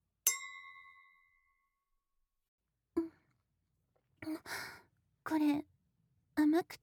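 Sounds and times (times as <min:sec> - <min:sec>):
glasses clinking in a toast: 0:00.3 - 0:01.0
speech: 0:04.2 - 0:04.7, 0:05.3 - 0:05.6, 0:06.5 - 0:06.8.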